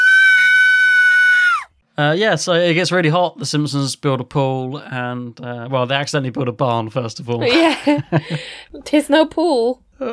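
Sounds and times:
high-pitched girly cartoon scream: 0.0s - 1.7s
speech: 2.0s - 10.1s
laughter: 7.4s - 8.5s.

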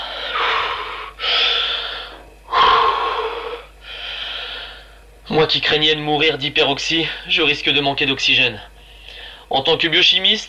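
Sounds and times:
slow controlled breathing: 0.0s - 5.1s, 8.8s - 9.5s
speech: 5.3s - 8.7s, 9.5s - 10.4s.

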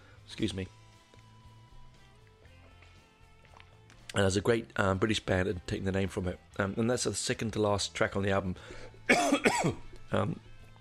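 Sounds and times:
speech: 0.3s - 0.8s, 4.2s - 10.4s
person coughing: 9.1s - 9.9s.

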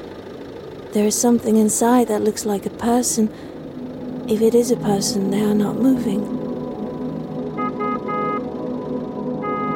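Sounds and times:
car engine rumbling: 0.0s - 9.7s
speech: 0.9s - 3.5s, 4.3s - 6.4s
car horn honks: 7.5s - 8.5s, 9.4s - 9.7s.

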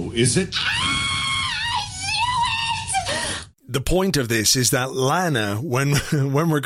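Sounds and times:
speech: 0.2s - 0.8s, 3.7s - 6.6s
person imitating an actress's high-pitched scream: 0.5s - 3.4s.

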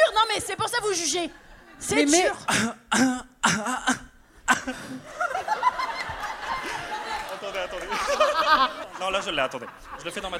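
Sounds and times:
speech: 0.4s - 4.0s, 4.6s - 5.2s, 7.5s - 10.3s
person coughing: 2.5s - 5.0s
laughter: 4.5s - 10.3s.

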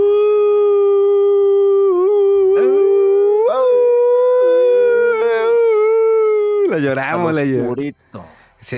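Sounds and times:
people imitating a wolf howl: 0.4s - 6.7s
speech: 6.8s - 8.7s.

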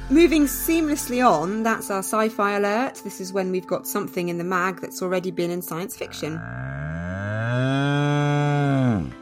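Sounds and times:
speech: 0.1s - 6.9s
long loud cow moo: 6.1s - 9.2s.

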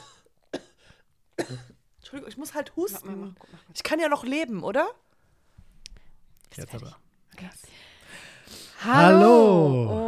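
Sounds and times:
woman coughing: 0.0s - 0.8s, 1.4s - 1.8s
speech: 1.5s - 5.0s, 6.5s - 7.8s, 8.8s - 10.0s.

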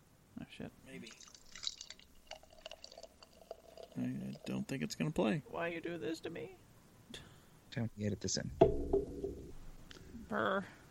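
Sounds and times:
speech: 0.6s - 1.4s, 4.0s - 9.2s, 10.3s - 10.8s
beer being poured: 0.9s - 5.1s.

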